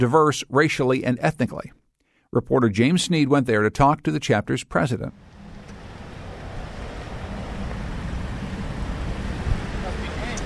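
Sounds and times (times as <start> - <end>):
speech: 0.0 - 5.4
ferry engine rumble arriving at island dock: 5.1 - 10.4.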